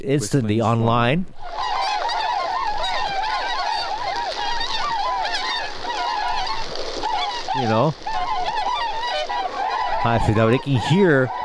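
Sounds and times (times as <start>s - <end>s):
speech: 0.0s - 1.6s, 7.6s - 8.1s, 10.0s - 11.4s
large flock of snow geese honking: 1.3s - 11.4s.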